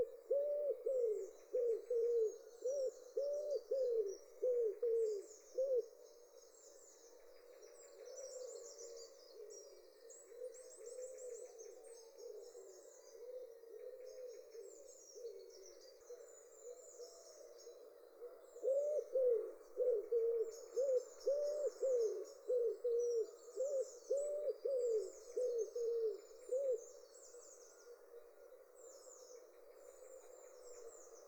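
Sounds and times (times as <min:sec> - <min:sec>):
common wood pigeon cooing: 0:00.0 - 0:05.9, 0:18.5 - 0:26.8.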